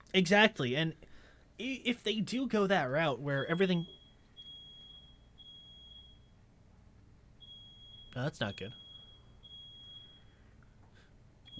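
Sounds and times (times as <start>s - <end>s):
speech: 0.1s - 4.0s, 8.2s - 8.8s
fire alarm beeping in high piercing tones: 2.8s - 11.5s.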